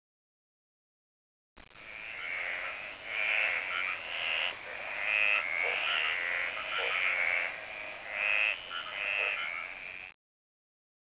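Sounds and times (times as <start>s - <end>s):
steady hiss: 1.6s - 10.2s
frog giving raspy trilled croaks: 1.8s - 10.2s.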